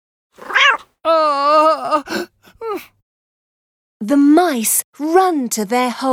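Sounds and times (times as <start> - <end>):
cat meowing: 0.4 - 2.8
speech: 4.1 - 6.1.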